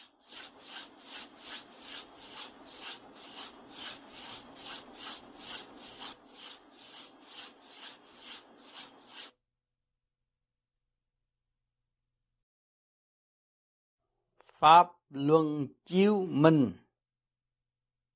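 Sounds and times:
bare soles of both feet rubbed hard against each other: 0.0 - 9.3
speech: 14.6 - 16.8.

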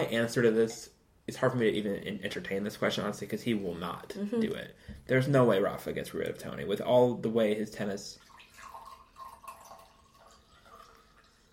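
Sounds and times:
speech: 0.0 - 8.3
wine pouring into a glass: 7.8 - 11.5.

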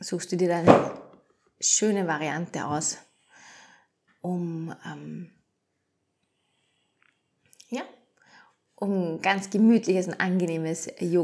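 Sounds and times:
speech: 0.1 - 1.0, 1.6 - 3.1, 4.2 - 5.4, 7.7 - 7.9, 8.8 - 11.2
yoga block tipping over and landing on the floor: 0.6 - 1.1.

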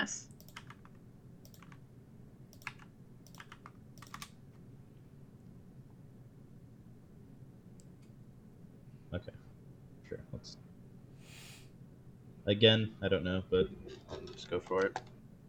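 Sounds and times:
speech: 0.0 - 0.3, 9.2 - 9.4, 12.5 - 15.1
typing on a computer keyboard during a tabletop game session: 0.3 - 1.8, 2.5 - 4.4.

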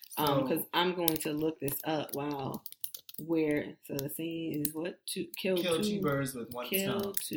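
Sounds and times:
speech: 0.2 - 7.3
typing on a computer keyboard: 1.0 - 4.8.

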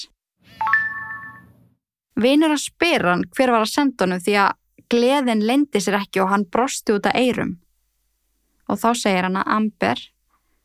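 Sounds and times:
phone two-tone notification chime for a new SMS text message: 0.5 - 1.6
speech: 2.2 - 7.6, 8.7 - 10.2.

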